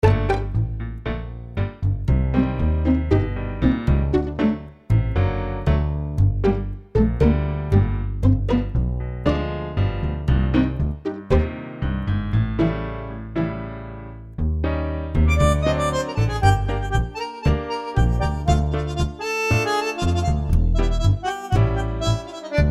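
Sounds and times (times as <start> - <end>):
Argentine tango music: 0.0 - 22.7.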